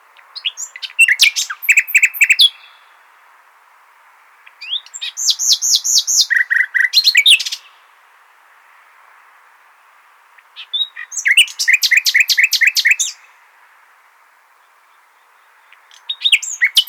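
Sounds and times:
common nightingale Luscinia megarhynchos singing: 0:00.0 - 0:03.2, 0:04.3 - 0:07.9, 0:09.6 - 0:13.5, 0:14.5 - 0:16.8.

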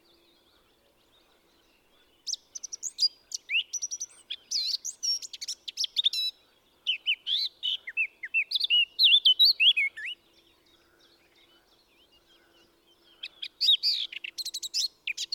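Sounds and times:
Eurasian blackcap warbling song: 0:01.1 - 0:10.3, 0:11.4 - 0:15.3.

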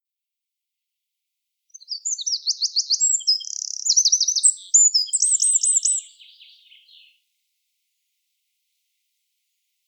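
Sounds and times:
Eurasian wren song: 0:01.7 - 0:07.2.

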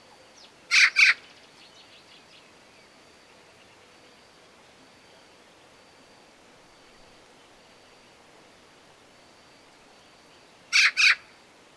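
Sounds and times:
Eurasian magpie Pica pica uttering harsh rasping chak calls: 0:00.7 - 0:01.2, 0:10.7 - 0:11.2.

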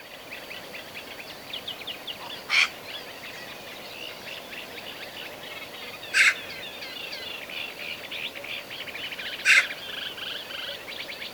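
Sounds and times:
small birds twittering chorus: 0:00.4 - 0:11.3
Eurasian magpie Pica pica giving grating calls: 0:06.2 - 0:06.4, 0:09.4 - 0:09.8.

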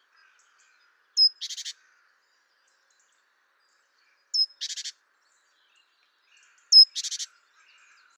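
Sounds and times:
Great tit Parus major calling: 0:01.2 - 0:01.7, 0:04.4 - 0:04.9, 0:06.7 - 0:07.3.

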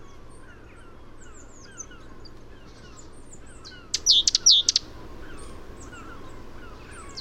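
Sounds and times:
Parus major great tit calling: 0:00.0 - 0:07.1
background hiss: 0:01.0 - 0:07.1.

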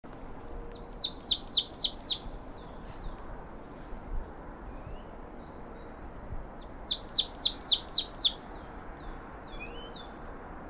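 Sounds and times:
faint steady background hiss: 0:00.1 - 0:10.6
marsh tit Poecile palustris calls: 0:00.8 - 0:03.7, 0:06.7 - 0:10.4.

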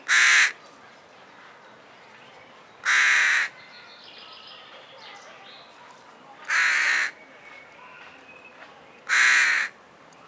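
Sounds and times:
background bird calls: 0:00.0 - 0:10.2
Carrion crow Corvus corone cawing: 0:00.1 - 0:00.6, 0:02.8 - 0:03.5, 0:06.5 - 0:07.2, 0:09.1 - 0:09.8.

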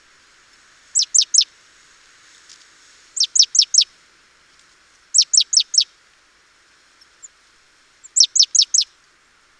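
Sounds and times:
great tit Parus major call series: 0:01.0 - 0:01.5, 0:03.2 - 0:03.9, 0:05.1 - 0:05.9, 0:08.0 - 0:08.9.

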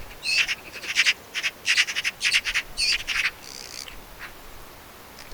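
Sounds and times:
Eurasian magpie Pica pica chattering: 0:00.1 - 0:04.0.

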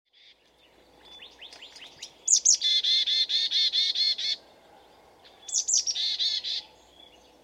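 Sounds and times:
marsh tit calling, Poecile palustris: 0:01.0 - 0:04.4, 0:05.4 - 0:06.7.

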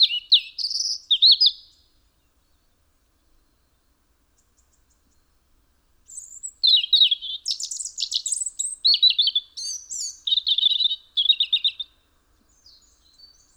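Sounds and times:
European robin singing fluid high warbling phrases: 0:00.0 - 0:01.8, 0:06.1 - 0:11.9.

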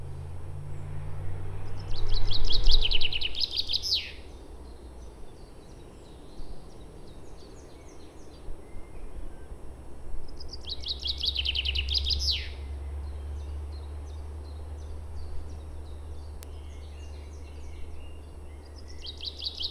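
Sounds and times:
low steady rumble: 0:00.0 - 0:19.6
common chaffinch Fringilla coelebs rattling song: 0:01.7 - 0:08.5, 0:10.4 - 0:19.6.

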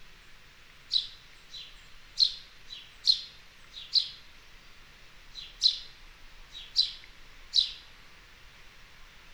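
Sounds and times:
house sparrow Passer domesticus chirping: 0:00.9 - 0:04.2, 0:05.4 - 0:05.9, 0:06.5 - 0:07.8.

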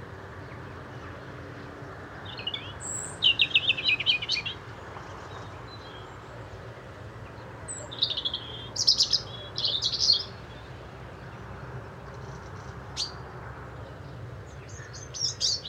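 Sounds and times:
European robin Erithacus rubecula giving twittering phrases: 0:02.2 - 0:04.6, 0:07.7 - 0:10.6, 0:13.0 - 0:13.2, 0:14.7 - 0:15.6.

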